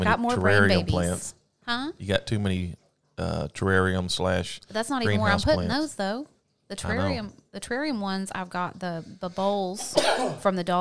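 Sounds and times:
speech: 0:00.1 - 0:10.7
person coughing or sneezing: 0:09.8 - 0:10.5.

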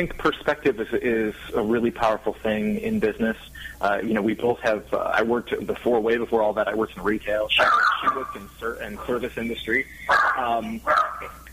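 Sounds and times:
speech: 0:00.0 - 0:11.4
background noise: 0:00.0 - 0:11.5
dog barking: 0:07.6 - 0:08.4, 0:10.1 - 0:11.4.

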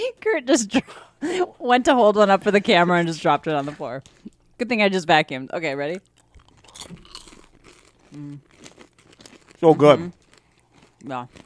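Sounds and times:
speech: 0:00.1 - 0:06.1, 0:06.8 - 0:07.1, 0:08.1 - 0:08.5, 0:09.6 - 0:10.2, 0:11.0 - 0:11.4
crunchy caramel snack being chewed: 0:06.0 - 0:11.4
person humming mm of approval: 0:08.1 - 0:08.4.

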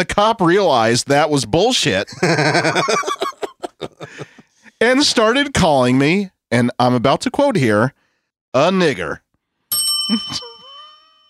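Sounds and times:
speech: 0:00.0 - 0:03.3, 0:04.8 - 0:09.2, 0:10.1 - 0:10.5
laughter: 0:02.1 - 0:04.8
bright metallic bell ringing: 0:09.7 - 0:11.2.

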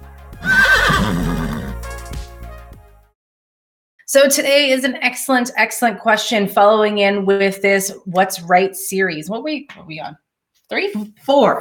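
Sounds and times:
horse neighing: 0:00.4 - 0:01.8
speech: 0:04.1 - 0:11.5.

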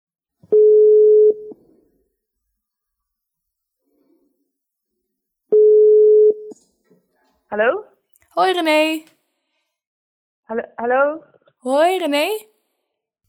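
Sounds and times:
telephone ringing tone while a call is placed: 0:00.5 - 0:01.5, 0:05.6 - 0:06.5
speech: 0:07.5 - 0:09.2, 0:10.5 - 0:12.5.

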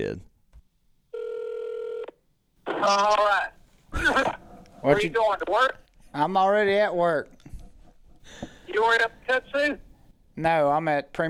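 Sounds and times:
speech: 0:00.0 - 0:00.3, 0:02.8 - 0:07.4, 0:08.2 - 0:11.2
single steady telephone tone: 0:01.1 - 0:02.1.

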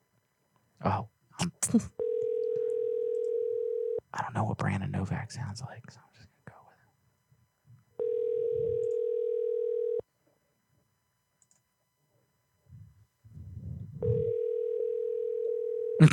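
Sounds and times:
speech: 0:00.8 - 0:02.0, 0:04.2 - 0:06.3
telephone ringback tone while placing a call: 0:02.0 - 0:04.0, 0:08.0 - 0:10.0, 0:14.0 - 0:16.0.

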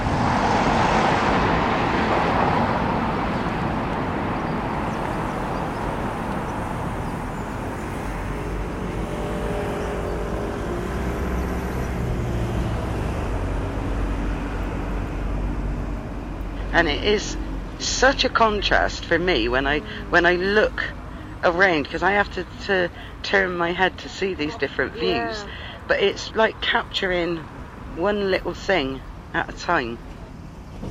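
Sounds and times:
road traffic passing over a bridge: 0:00.0 - 0:30.8
speech: 0:16.8 - 0:17.4, 0:18.0 - 0:30.1.

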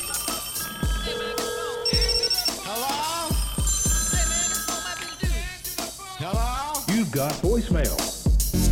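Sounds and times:
telephone ringing in a hotline intro sting: 0:00.0 - 0:05.9
punchy beats in a hotline intro sting: 0:02.0 - 0:08.6.

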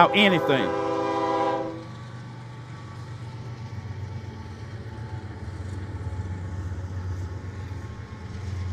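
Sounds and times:
speech: 0:00.0 - 0:00.8
train horn: 0:00.0 - 0:01.9
train wheels and cars rolling past: 0:00.0 - 0:08.7.

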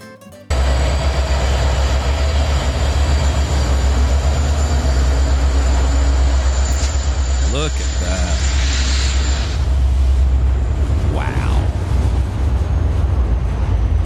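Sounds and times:
freight train rumbling on rails: 0:00.5 - 0:14.0.

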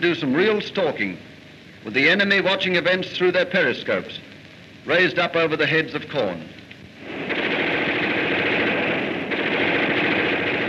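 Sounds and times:
speech: 0:00.0 - 0:06.6
loud sustained machine gun fire: 0:07.0 - 0:10.6.

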